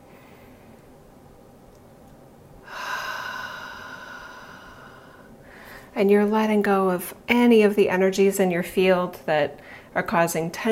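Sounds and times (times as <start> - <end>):
deep airy breath during a guided relaxation exercise: 2.6 - 5.9
speech: 6.0 - 10.6.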